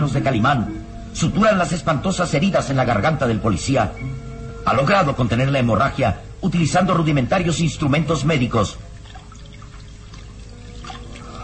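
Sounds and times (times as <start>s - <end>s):
speech: 0.0s - 8.8s
boiled water poured to clean wounds: 8.8s - 11.4s.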